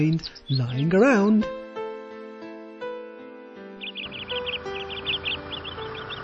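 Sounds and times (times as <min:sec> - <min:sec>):
sparrow chirping: 0:00.0 - 0:01.6, 0:03.8 - 0:06.2
speech: 0:00.0 - 0:01.6
soft sustained music: 0:00.0 - 0:06.2.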